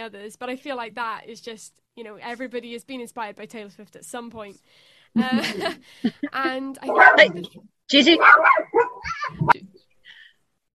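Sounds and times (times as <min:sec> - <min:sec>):
speech: 0:00.0 - 0:09.6
dog barking and whining as it chases something: 0:06.8 - 0:09.6.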